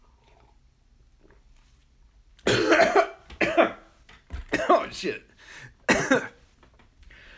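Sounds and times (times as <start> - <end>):
person coughing after seltzer went down the wrong pipe: 2.5 - 3.9, 4.5 - 5.2, 5.9 - 6.4
speech: 5.0 - 5.3, 6.0 - 6.3.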